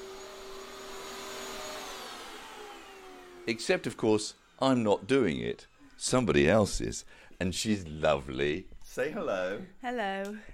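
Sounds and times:
vacuum cleaner running: 0.0 - 4.4
speech: 3.4 - 10.5.

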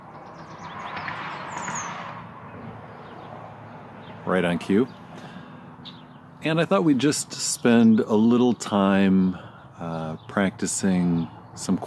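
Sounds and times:
birds singing and chirping outdoors: 0.0 - 11.8
speech: 4.3 - 5.0, 6.4 - 11.8.

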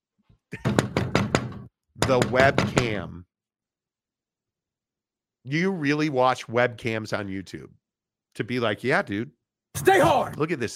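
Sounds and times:
loud knocks on a door: 0.6 - 3.0
speech: 2.1 - 3.3, 5.5 - 7.8, 8.4 - 10.7.

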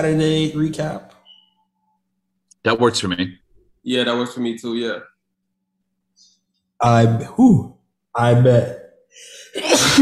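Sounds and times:
speech: 0.0 - 1.2, 2.6 - 5.1, 6.8 - 9.9
person sneezing loudly: 9.4 - 9.9.

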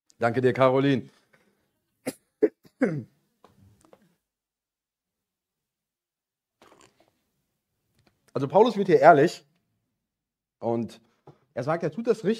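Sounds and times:
speech: 0.2 - 1.2, 2.8 - 3.1, 8.4 - 9.5, 10.6 - 11.0, 11.6 - 12.3
person coughing into the microphone: 2.0 - 3.2.

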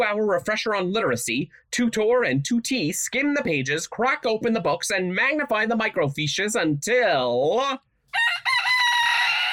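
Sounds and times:
speech: 0.0 - 8.6
rooster crowing: 8.1 - 9.5.

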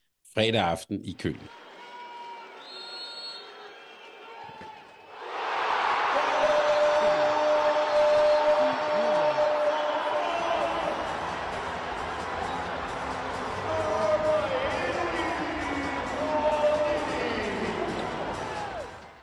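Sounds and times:
speech: 0.4 - 1.6
large arena crowd cheering and shouting after a handball goal: 1.5 - 19.2
handball court sounds: 3.8 - 19.2.

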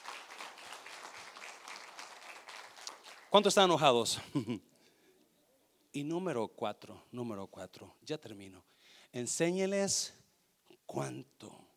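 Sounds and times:
crowd applauding: 0.0 - 3.8
speech: 3.3 - 4.7, 6.0 - 10.2, 10.9 - 11.7
laughter: 4.1 - 4.6.

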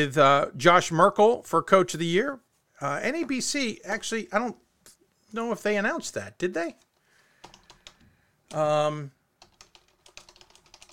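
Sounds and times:
speech: 0.0 - 4.6, 5.3 - 6.8, 8.5 - 9.2
fingers typing on a computer keyboard: 7.4 - 8.0, 9.4 - 10.9.

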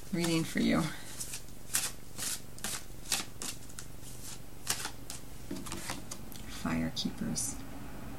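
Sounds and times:
speech: 0.1 - 1.0, 6.6 - 7.6
tarot card drawn from the deck rustling and flicking: 0.1 - 6.2.

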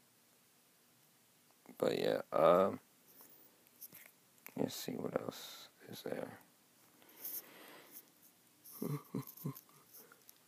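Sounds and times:
speech: 1.8 - 2.9, 4.6 - 6.5, 8.8 - 9.7
person yawning close to the mic: 8.8 - 9.2.

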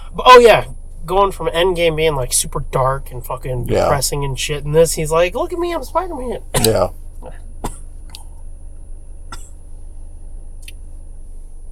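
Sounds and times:
steady low engine-like rumble inside a car: 0.0 - 11.6
speech: 0.2 - 7.4
sharp husky coughs inside a car: 6.6 - 7.9.

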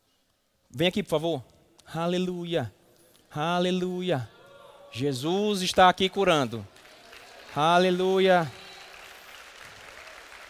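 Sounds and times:
speech: 0.7 - 4.3, 4.9 - 6.7, 7.6 - 8.6
crowd applauding: 6.5 - 10.4.

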